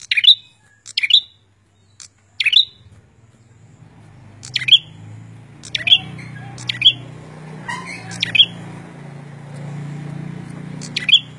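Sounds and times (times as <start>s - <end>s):
prinia giving snappy high chirps: 0.0s - 11.3s.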